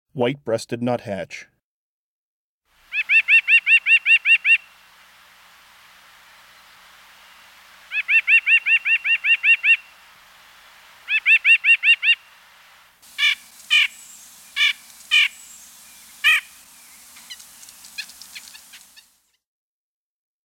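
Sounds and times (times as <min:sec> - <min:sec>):
White-breasted Nuthatch calling in the Chicago region: 0:02.9 - 0:04.8, 0:06.5 - 0:19.2.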